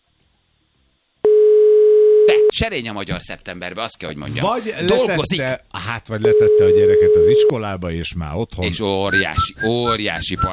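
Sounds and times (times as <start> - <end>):
telephone call tone: 1.3 - 2.6, 6.2 - 7.6
speech: 2.3 - 10.5.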